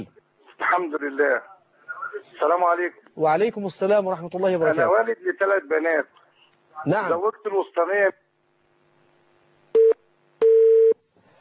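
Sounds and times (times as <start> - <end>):
speech: 0.0 - 1.5, 2.1 - 6.2, 6.8 - 8.2
telephone busy tone after a dropped call: 9.8 - 11.0.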